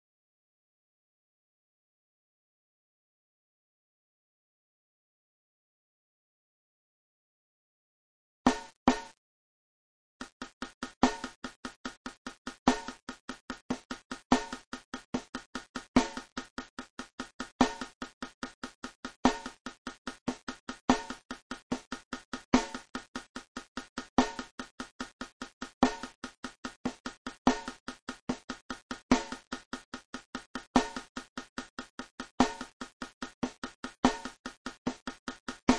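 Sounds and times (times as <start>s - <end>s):
funk snare drum: 10.2s - 35.7s.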